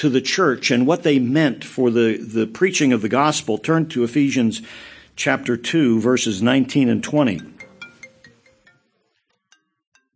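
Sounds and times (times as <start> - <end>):
speech: 0.0 - 7.5
timer alarm beeping: 7.1 - 8.7.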